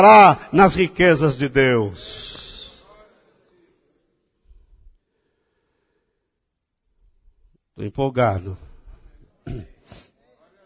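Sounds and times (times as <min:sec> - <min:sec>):
speech: 0:00.0 - 0:02.3, 0:07.8 - 0:08.7, 0:09.5 - 0:10.0
harsh cough: 0:09.4 - 0:10.1.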